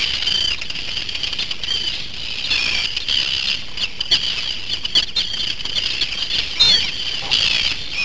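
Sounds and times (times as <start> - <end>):
Arctic terns calling in chorus at an airfield in Iceland: 0.0 - 8.0
loud strident Arctic tern cry: 0.0 - 8.0.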